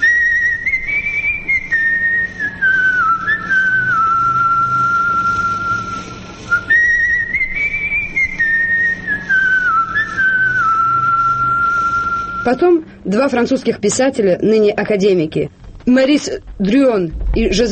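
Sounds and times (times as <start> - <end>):
lone whistled melody used as radio call sign: 0.0 - 12.8
speech: 12.5 - 17.7.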